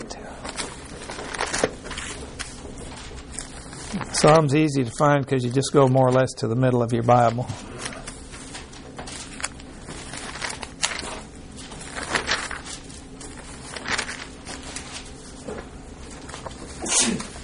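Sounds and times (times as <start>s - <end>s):
low steady hum: 0.0s - 17.4s
speech: 3.9s - 7.7s
person sneezing: 16.8s - 17.4s.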